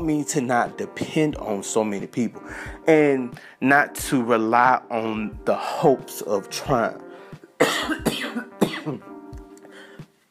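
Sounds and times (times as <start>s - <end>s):
speech: 0.0s - 7.0s, 7.6s - 9.1s
harsh coughs: 7.6s - 9.1s
rough throat clearing: 7.6s - 9.1s.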